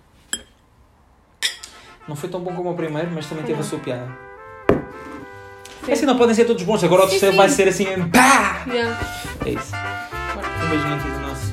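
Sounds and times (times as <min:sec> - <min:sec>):
glasses clinking in a toast: 0:00.3 - 0:00.6, 0:01.4 - 0:01.8
speech: 0:02.1 - 0:04.3, 0:05.8 - 0:09.8, 0:10.7 - 0:11.1.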